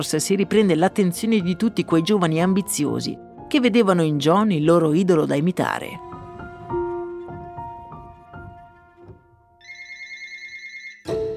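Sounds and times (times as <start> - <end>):
speech: 0.0 - 6.1
telephone ringing with a trilling warble: 9.6 - 11.1.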